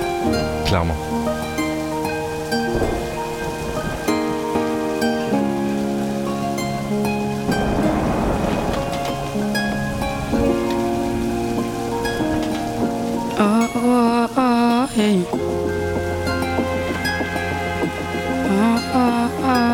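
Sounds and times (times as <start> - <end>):
stormy ocean waves surging and crashing: 0.0 - 19.7
sustained musical chords: 0.0 - 19.7
speech: 0.7 - 1.2.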